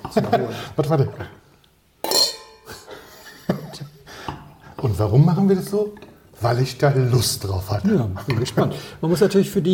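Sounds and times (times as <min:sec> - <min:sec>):
speech: 0:00.1 - 0:01.4, 0:05.0 - 0:09.7
glasses clinking in a toast: 0:02.0 - 0:04.0
laughter: 0:02.7 - 0:04.1.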